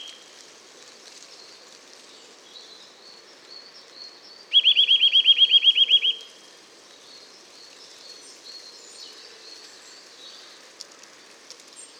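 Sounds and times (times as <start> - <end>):
Eurasian nuthatch Sitta europaea whistling: 4.5 - 6.2.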